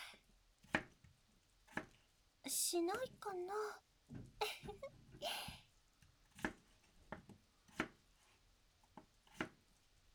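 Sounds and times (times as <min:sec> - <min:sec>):
knife chopping raw potatoes into large chunks: 0:00.6 - 0:02.0, 0:06.2 - 0:08.3, 0:08.9 - 0:09.6
speech: 0:02.5 - 0:05.6.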